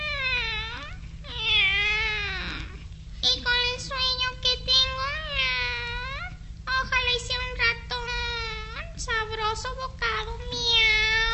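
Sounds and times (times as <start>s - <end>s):
cat meowing: 0.0s - 2.8s, 10.6s - 11.3s
low hum: 0.0s - 11.3s.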